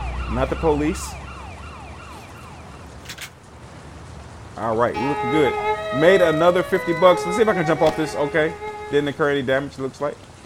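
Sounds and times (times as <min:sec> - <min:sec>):
ambulance siren in a video game: 0:00.0 - 0:02.8, 0:05.0 - 0:09.4
video game noise: 0:00.0 - 0:10.4
speech: 0:00.3 - 0:01.2, 0:04.6 - 0:10.3.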